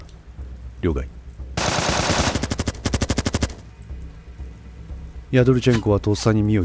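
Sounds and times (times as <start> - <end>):
speech: 0.8 - 1.2, 5.3 - 6.6
automatic gunfire from a special-forces ambush: 1.6 - 3.7.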